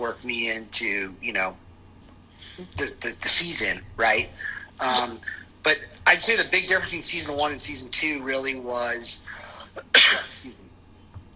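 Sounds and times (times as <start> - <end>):
speech: 0.0 - 1.6, 2.4 - 9.4
faint breath: 4.4 - 5.5
sharp explosive cough: 9.8 - 10.5.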